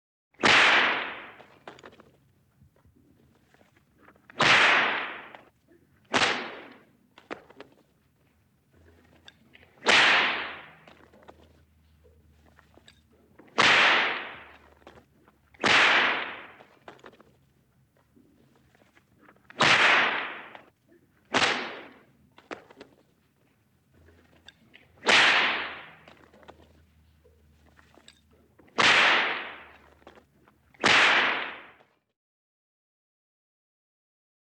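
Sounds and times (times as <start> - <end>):
trainer's whip cracking: 0.4 - 1.9, 4.3 - 5.5, 6.1 - 7.7, 9.7 - 11.5, 13.4 - 14.9, 15.6 - 17.2, 19.5 - 20.7, 21.3 - 22.9, 25.0 - 26.6, 28.7 - 30.0, 30.8 - 31.8.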